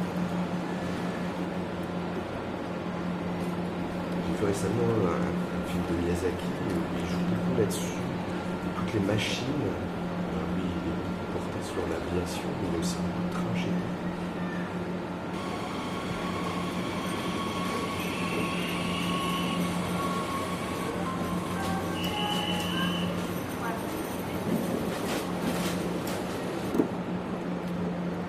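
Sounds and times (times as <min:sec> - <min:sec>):
heavy train rumble with low droning hum in film sound effects: 0:00.0 - 0:28.2
speech: 0:04.4 - 0:08.1, 0:08.8 - 0:10.0, 0:11.8 - 0:14.2
brief high screeching whines: 0:15.4 - 0:23.1.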